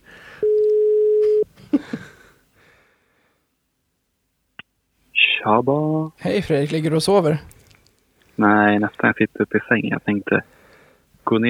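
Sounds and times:
telephone ringback tone: 0.4 - 1.5
speech: 5.4 - 7.5, 8.4 - 10.6, 11.3 - 11.4.

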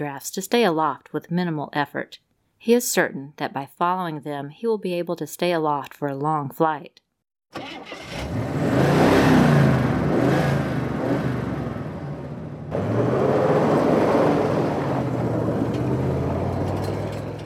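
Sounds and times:
speech: 0.0 - 8.5
Cadillac car engine accelerating while towing a glider: 7.6 - 17.4.

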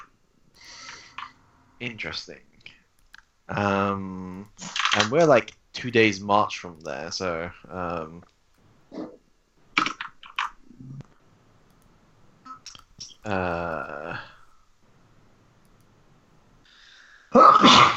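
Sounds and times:
speech: 1.8 - 2.5, 3.5 - 8.3, 13.3 - 14.3
person sneezing: 17.3 - 17.9.

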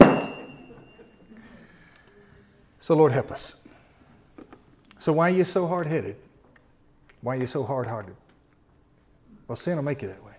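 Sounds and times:
hammer blow breaking something apart: 0.0 - 0.9
speech: 2.8 - 3.6, 5.0 - 6.2, 7.2 - 8.2, 9.5 - 10.3.

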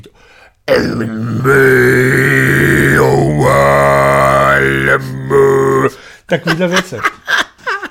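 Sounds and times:
speech: 0.7 - 2.4, 5.0 - 7.3
Mongolian throat singing: 0.7 - 6.0
laughter: 6.3 - 7.8.

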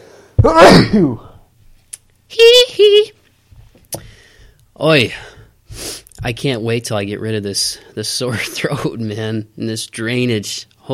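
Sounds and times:
faint breathing: 0.0 - 0.4, 3.9 - 6.2
speech: 0.4 - 1.3, 2.3 - 3.2, 4.8 - 5.4, 6.2 - 10.9
person sneezing: 0.4 - 1.4.

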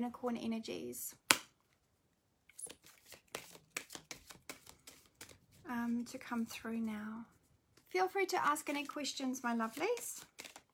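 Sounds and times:
speech: 0.0 - 1.2, 5.7 - 10.3
oracle cards shuffled by hand: 2.5 - 6.9, 7.8 - 10.7.

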